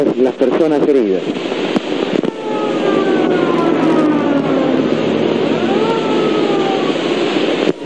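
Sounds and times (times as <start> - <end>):
speech: 0.0 - 1.7
dense roar of traffic or engine noise: 1.3 - 7.8
ambulance siren wailing at hospital gates: 2.1 - 7.8.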